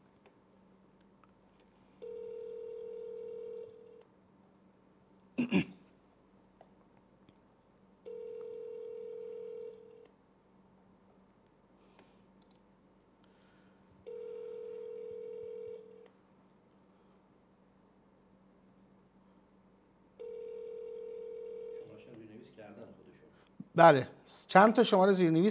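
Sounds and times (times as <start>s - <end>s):
telephone line buzzing tones while placing a call: 2.0s - 4.0s, 8.1s - 10.1s, 14.0s - 16.1s, 20.2s - 21.9s
speech: 5.5s - 5.8s, 23.8s - 25.4s.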